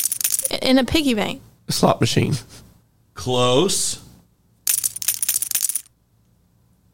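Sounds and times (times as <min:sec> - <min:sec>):
poker chips clinking and rattling: 0:00.0 - 0:00.6, 0:04.7 - 0:05.9
speech: 0:00.6 - 0:02.6, 0:03.2 - 0:04.0.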